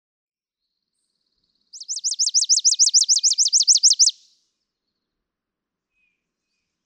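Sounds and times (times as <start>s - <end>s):
chipping sparrow rattling trill: 1.8s - 4.3s.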